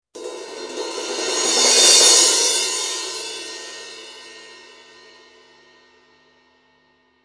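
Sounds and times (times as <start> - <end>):
16-inch crash cymbal: 0.2 - 6.8.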